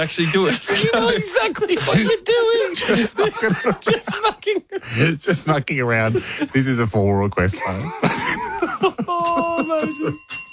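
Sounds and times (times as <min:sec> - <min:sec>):
laughter: 0:00.0 - 0:10.2
speech: 0:00.0 - 0:10.4
bicycle-style bell ringing in bright metallic trills: 0:09.2 - 0:10.5.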